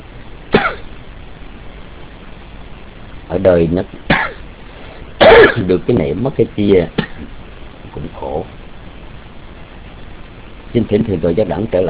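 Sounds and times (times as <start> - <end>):
person coughing: 0.6 - 0.9, 4.1 - 4.4, 5.2 - 5.7, 7.0 - 7.3
speech: 3.3 - 4.3, 5.4 - 7.3, 10.8 - 11.8.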